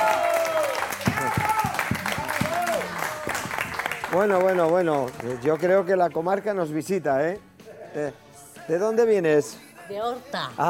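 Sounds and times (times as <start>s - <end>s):
studio audience applause: 0.0s - 5.8s
speech: 4.1s - 10.6s.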